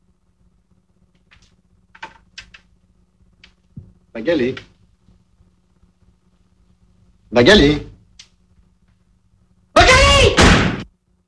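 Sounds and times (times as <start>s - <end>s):
speech: 4.2s - 4.7s, 7.4s - 7.9s
door slamming shut: 10.4s - 10.8s.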